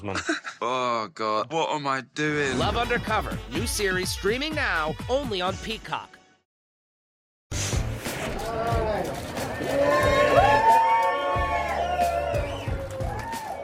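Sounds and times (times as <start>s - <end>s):
speech: 0.0s - 6.2s
large crowd applauding at an airport: 8.4s - 13.6s.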